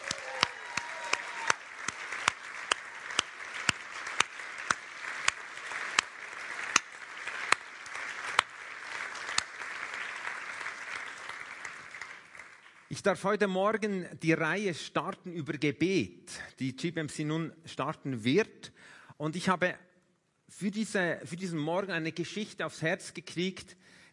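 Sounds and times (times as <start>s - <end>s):
audience applause: 0.0s - 12.9s
speech: 13.0s - 19.9s, 20.5s - 24.1s.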